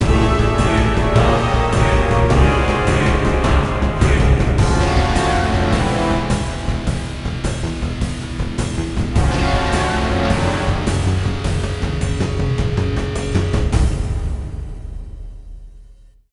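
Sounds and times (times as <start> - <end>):
Norse battle music sting: 0.0 - 15.4.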